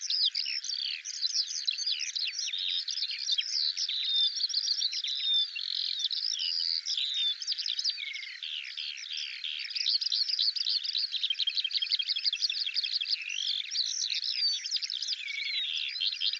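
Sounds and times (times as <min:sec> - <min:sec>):
Eurasian skylark song: 0:00.0 - 0:16.3.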